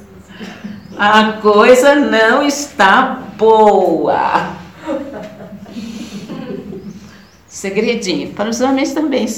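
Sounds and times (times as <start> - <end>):
speech: 0.4 - 5.0, 7.6 - 9.3
laughter: 4.8 - 7.2
heavy breathing with snorting throaty air sounds: 5.7 - 7.5.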